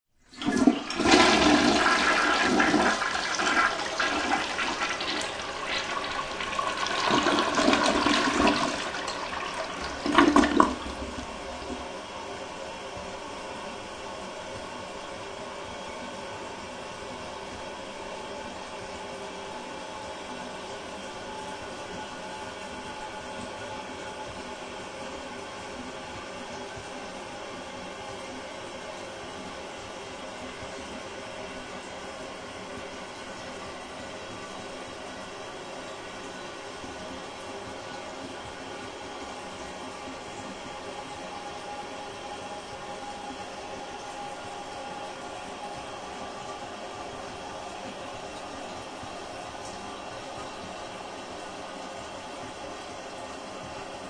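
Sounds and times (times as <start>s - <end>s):
toilet cistern running and refilling in a bathroom: 0.2s - 13.2s, 32.6s - 54.0s
household toilet flushing: 0.2s - 54.0s.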